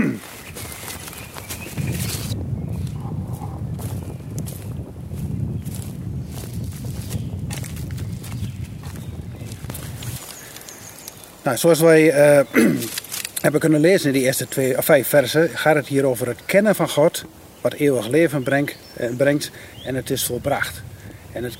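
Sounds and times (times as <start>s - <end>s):
footsteps crunching while walking outdoors: 0.0s - 11.9s
speech: 11.5s - 21.5s.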